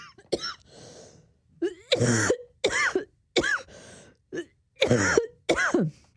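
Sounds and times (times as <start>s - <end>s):
person coughing harshly: 1.6s - 3.7s, 4.4s - 6.0s.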